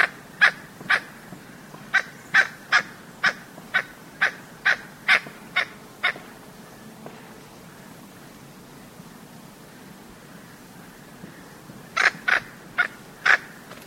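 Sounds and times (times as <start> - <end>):
blue-banded toucanet harsh croaks: 1.9 - 6.2, 12.0 - 13.6.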